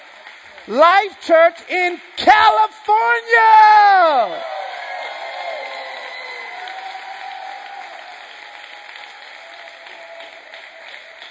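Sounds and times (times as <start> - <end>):
large crowd clapping to congratulate a new senior pastor: 0.0 - 2.6, 4.3 - 11.2
speech: 0.7 - 4.5
faint whoops and cheers: 4.1 - 11.2.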